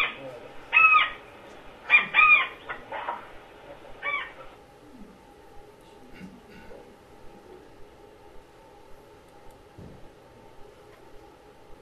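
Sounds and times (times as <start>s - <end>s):
bird calling on the Amazon river: 0.0s - 5.2s
steady noise: 0.0s - 11.7s.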